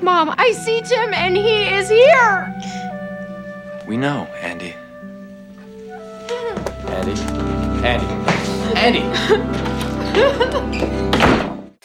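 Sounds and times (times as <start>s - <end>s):
speech: 0.0s - 2.8s, 3.9s - 4.8s, 6.9s - 11.5s
laughter: 8.8s - 11.1s
door slamming shut: 10.8s - 11.7s.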